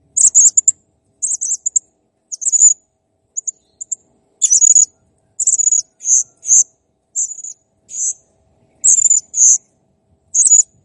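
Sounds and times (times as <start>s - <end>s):
blue-crowned hanging parrot giving high buzzy squeaks and chirps: 0.2s - 0.7s, 1.2s - 2.8s, 3.4s - 8.2s, 8.8s - 9.6s, 10.4s - 10.7s.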